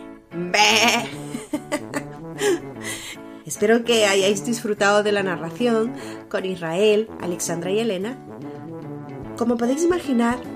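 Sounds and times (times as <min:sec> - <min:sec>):
goat bleating: 0:00.5 - 0:01.2
speech: 0:03.6 - 0:08.4, 0:09.4 - 0:10.5.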